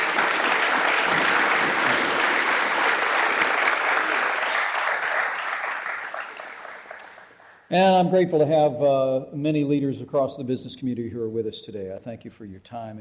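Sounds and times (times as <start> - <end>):
large audience applause: 0.0 - 7.6
speech: 7.7 - 12.9.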